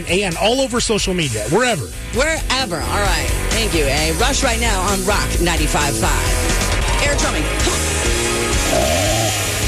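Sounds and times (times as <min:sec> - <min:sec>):
speech: 0:00.0 - 0:09.5
chainsaw engine revving: 0:08.6 - 0:09.6.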